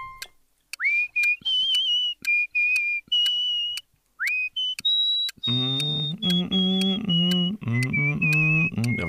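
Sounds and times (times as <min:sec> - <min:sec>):
person whistling a slow gentle lullaby melody used as phone notification tone: 0:00.7 - 0:09.0
low hummed voice: 0:05.5 - 0:09.0.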